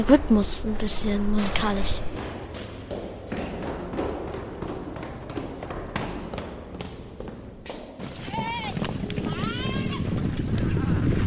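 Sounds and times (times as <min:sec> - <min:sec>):
speech: 0:00.0 - 0:02.2
noisy outdoor background: 0:00.0 - 0:11.2
footsteps running down stairs outdoors: 0:02.1 - 0:10.8.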